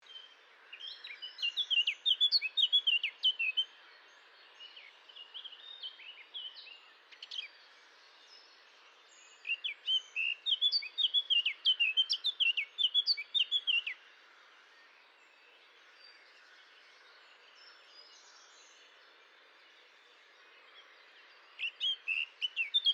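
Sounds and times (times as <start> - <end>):
blackcap singing: 0.1 - 3.7, 9.3 - 14.0, 21.6 - 22.9.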